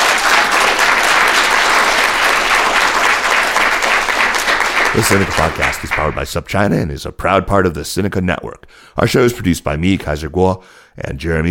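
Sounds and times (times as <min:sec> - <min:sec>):
applause from a sizable crowd: 0:00.0 - 0:06.3
speech: 0:05.0 - 0:11.4.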